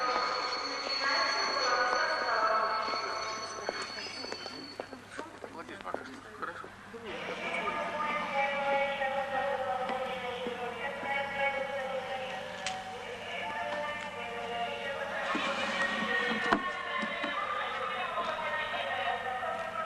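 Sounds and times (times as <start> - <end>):
express train wheels screeching and rumbling into a station platform: 0.0 - 5.0, 15.0 - 16.8
person speaking: 7.0 - 19.4.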